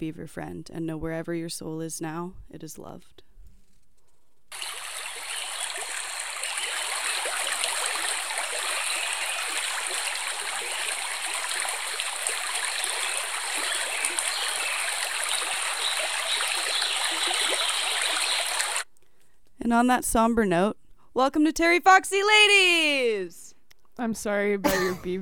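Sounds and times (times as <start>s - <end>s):
speech: 0.0s - 3.3s, 19.7s - 23.4s, 24.0s - 25.2s
river water flowing: 4.5s - 18.8s.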